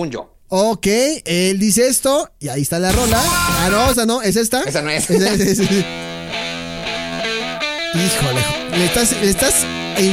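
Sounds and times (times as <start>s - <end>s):
speech: 0.0s - 6.0s, 7.9s - 10.1s
recorded song with melodic lead over distorted band: 2.8s - 4.2s, 5.0s - 10.1s
laughter: 4.7s - 6.2s.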